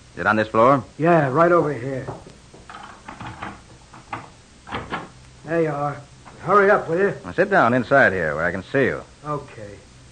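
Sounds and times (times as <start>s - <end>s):
speech: 0.2s - 2.3s, 5.5s - 9.9s
door clunking as it swings open: 2.1s - 5.2s
rattling metallic clicks of a door being unlocked: 2.7s - 5.1s.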